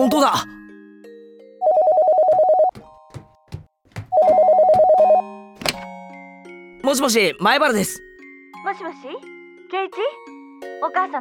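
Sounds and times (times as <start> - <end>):
speech: 0.0 - 0.5, 6.9 - 8.0, 8.6 - 11.1
telephone ringing with trilling bell tones: 1.6 - 2.7, 4.2 - 5.3.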